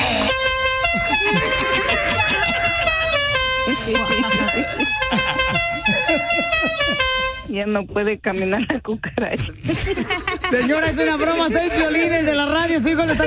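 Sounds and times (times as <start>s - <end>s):
car horn honking a tune: 0.0s - 7.6s
laughter: 0.8s - 7.4s, 8.4s - 13.2s
speech: 7.6s - 13.2s.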